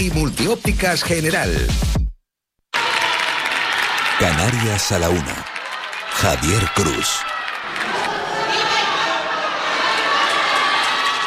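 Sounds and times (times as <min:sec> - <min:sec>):
speech: 0:00.0 - 0:02.0, 0:04.2 - 0:05.5, 0:06.2 - 0:07.3
large crowd shouting cheers for the Pope: 0:02.7 - 0:11.2.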